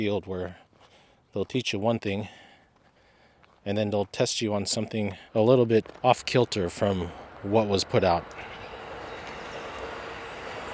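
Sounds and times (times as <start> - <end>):
speech: 0.0 - 0.6, 1.3 - 2.4, 3.6 - 8.5
passenger train passing: 6.0 - 10.7.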